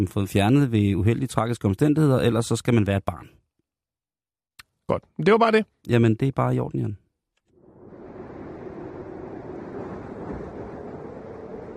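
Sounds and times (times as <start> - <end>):
speech: 0.0 - 3.4, 4.9 - 7.0
wind rushing across the microphone: 7.6 - 11.7.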